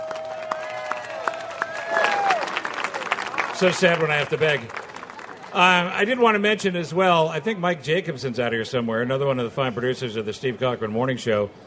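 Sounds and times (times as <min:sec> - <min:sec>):
audience applause: 0:00.0 - 0:06.4
speech: 0:03.6 - 0:04.8, 0:05.5 - 0:11.6.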